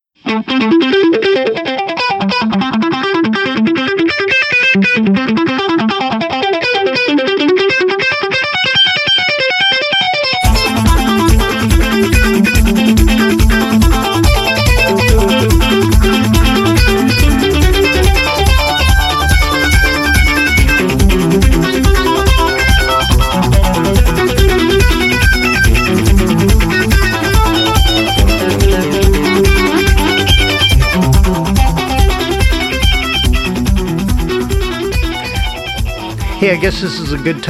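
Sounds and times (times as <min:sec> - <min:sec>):
loud distorted heavy metal electric guitar runs through a delay pedal: 0:00.2 - 0:37.4
speech: 0:00.3 - 0:01.7, 0:36.8 - 0:37.4.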